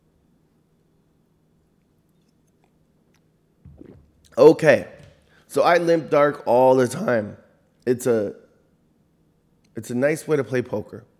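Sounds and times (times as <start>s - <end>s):
low steady hum: 0.0s - 11.1s
faint wet mouth sounds: 1.8s - 5.2s
person sipping coffee: 1.8s - 5.3s
speech: 4.3s - 8.4s, 9.8s - 11.1s.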